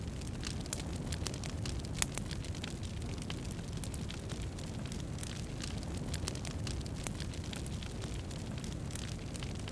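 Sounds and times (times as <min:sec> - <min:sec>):
small campfire: 0:00.0 - 0:09.7.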